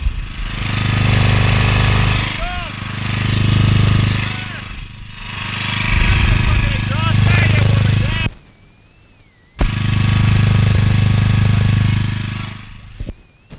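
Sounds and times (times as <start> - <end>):
generator engine droning by its exhaust: 0.0 - 13.5
voice: 6.0 - 8.3.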